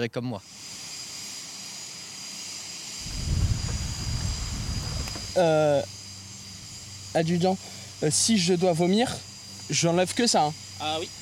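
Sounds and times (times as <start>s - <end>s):
speech: 0.0s - 0.8s, 5.4s - 6.0s, 7.1s - 11.2s
jet aircraft engine idling before takeoff: 0.4s - 11.2s.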